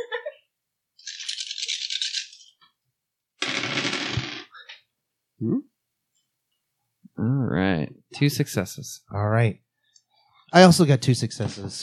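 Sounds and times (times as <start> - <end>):
dice rattling in a cup: 1.0 - 2.6, 3.4 - 4.6
speech: 5.4 - 5.7, 7.2 - 9.6, 10.5 - 11.8.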